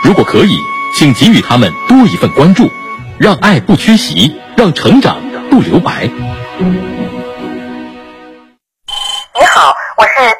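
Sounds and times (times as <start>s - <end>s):
buzzy pulsing phone ring: 0.0s - 3.1s, 8.9s - 9.3s
speech: 0.1s - 6.9s.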